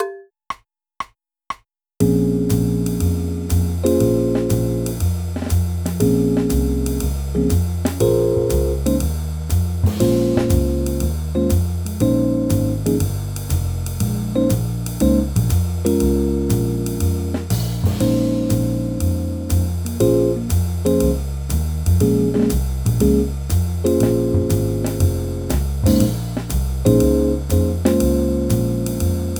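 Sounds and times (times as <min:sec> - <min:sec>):
C minor play along backing music: 0:02.0 - 0:21.3, 0:21.9 - 0:29.3.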